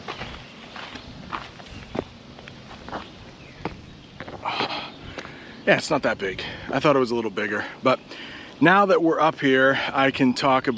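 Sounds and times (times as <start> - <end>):
footsteps of someone walking and climbing onto a big rock outdoors: 0.0 - 5.4
speech: 5.7 - 10.7.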